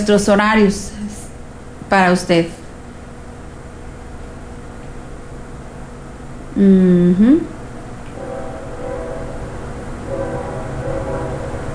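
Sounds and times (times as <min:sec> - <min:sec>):
speech: 0:00.0 - 0:01.2, 0:01.9 - 0:02.6, 0:06.6 - 0:07.6
train horn blast: 0:08.1 - 0:11.7.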